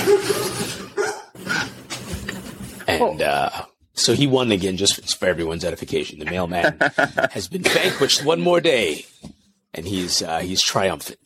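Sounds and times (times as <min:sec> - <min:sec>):
dog barking at the mailman: 0:00.0 - 0:01.4
speech: 0:02.9 - 0:09.1, 0:09.7 - 0:11.2
laughter: 0:06.3 - 0:08.3.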